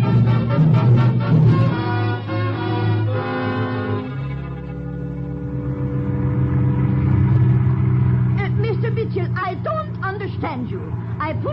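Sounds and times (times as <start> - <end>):
car engine revving and accelerating as the car drives off: 0.0 - 11.5.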